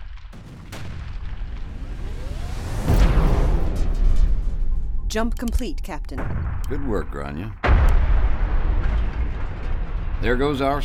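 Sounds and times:
loud explosion: 0.0s - 5.0s, 6.2s - 10.8s
sustained roaring boom: 0.0s - 5.1s, 6.2s - 10.8s
low rumble: 0.0s - 10.8s
speech: 5.2s - 8.0s, 10.2s - 10.8s.

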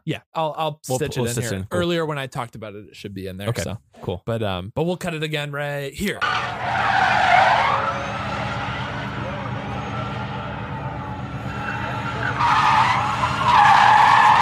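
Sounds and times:
speech: 0.0s - 8.0s
electric car tire squeal while drifting: 6.2s - 14.3s.

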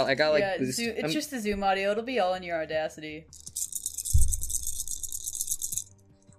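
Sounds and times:
speech: 0.0s - 3.7s
dice rattling: 3.3s - 5.9s.

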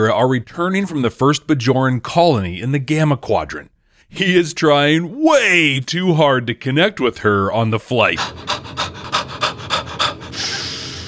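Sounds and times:
speech: 0.0s - 8.8s
forceful breath huffs in a bellows breathing exercise: 8.1s - 11.0s.

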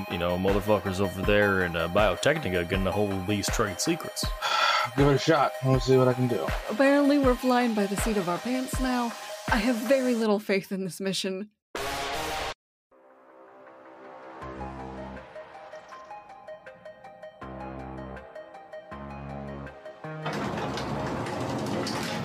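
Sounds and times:
speech: 0.0s - 11.6s
elevator door grinding shut: 20.0s - 22.2s
loud rushing clatter of elevator door: 20.2s - 22.2s.

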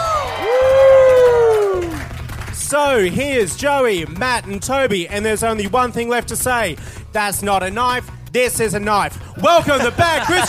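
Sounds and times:
person letting out a long sustained whoop: 0.0s - 2.1s
pub crowd cheering: 0.0s - 2.3s
speech: 2.7s - 10.4s
laughter: 9.4s - 10.4s.

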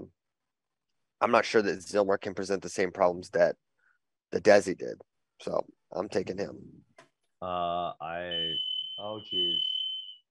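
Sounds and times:
speech: 1.2s - 3.7s, 4.3s - 9.7s
smoke alarm in loud harsh pulses with a piercing high tone: 8.3s - 10.2s.

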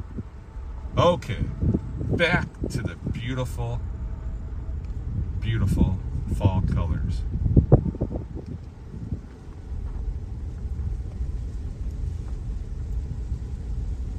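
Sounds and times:
wind rushing past a car on a fall drive: 0.0s - 14.1s
speech: 1.0s - 3.9s, 5.4s - 7.4s.

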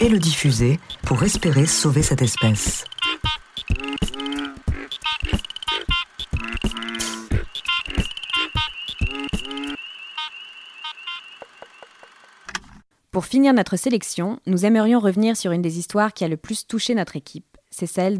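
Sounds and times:
speech: 0.0s - 4.1s, 13.2s - 18.1s
Plectrohyla exquisita frog calls: 0.0s - 11.5s
steady high trill: 0.0s - 12.5s.

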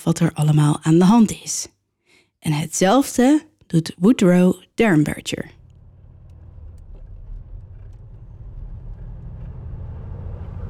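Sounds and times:
speech: 0.0s - 1.8s, 2.4s - 5.6s
car engine and road rumble driving home at night: 5.5s - 10.6s.

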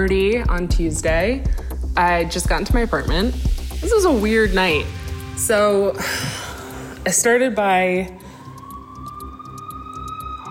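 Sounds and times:
speech: 0.0s - 6.4s, 7.0s - 8.2s
emergency siren wailing: 8.2s - 10.4s.

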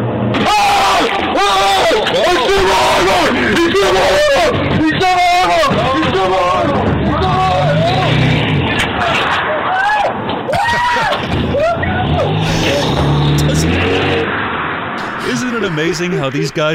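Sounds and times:
rumbling engine or traffic noise: 0.0s - 16.7s
man screaming after being shot: 0.4s - 8.3s, 9.7s - 13.7s
people shouting: 0.4s - 8.4s, 9.0s - 14.2s
speech: 15.6s - 16.7s.

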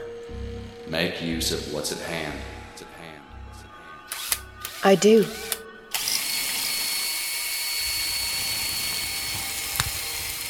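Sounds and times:
speech: 0.3s - 2.9s, 4.8s - 5.5s
cordless drill running with high-pitched whine: 4.1s - 10.4s.

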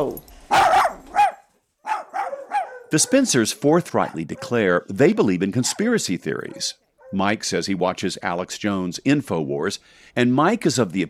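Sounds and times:
speech: 0.0s - 0.6s, 2.9s - 11.0s
excitable dogs barking: 0.5s - 7.4s.

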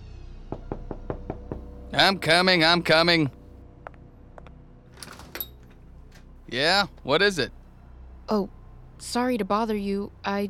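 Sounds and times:
low hum: 0.0s - 10.4s
knocking on a butcher's shop door in Cleveland: 0.5s - 1.7s
speech: 1.9s - 3.4s, 6.5s - 7.6s, 8.3s - 10.4s.

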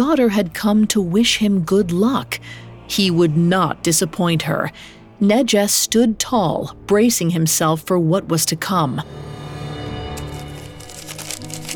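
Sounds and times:
speech: 0.0s - 9.4s
steady low droning background: 0.0s - 11.0s
dry papyrus scroll crinkling and crackling: 10.2s - 11.7s.

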